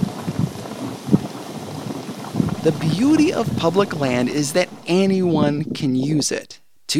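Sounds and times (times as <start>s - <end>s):
steam and water percolating up from the ground: 0.0s - 6.4s
boiling water bubbling in hot pools: 2.4s - 6.4s
speech: 2.6s - 6.9s.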